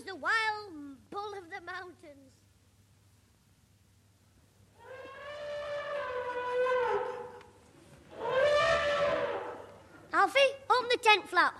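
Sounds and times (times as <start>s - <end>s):
speech: 1.1s - 2.4s, 10.3s - 11.5s
elephant trumpeting outside a tent: 4.8s - 7.4s, 8.1s - 9.8s.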